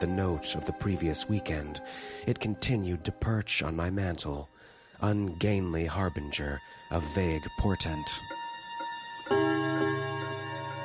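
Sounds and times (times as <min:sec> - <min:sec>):
speech: 0:00.0 - 0:08.4
resonant railroad clock chime ringing: 0:08.8 - 0:10.8.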